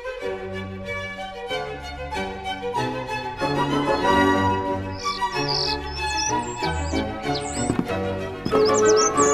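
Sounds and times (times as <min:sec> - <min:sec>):
instrumental music: 0:00.0 - 0:09.3
starling chirping and warbling: 0:03.7 - 0:09.3.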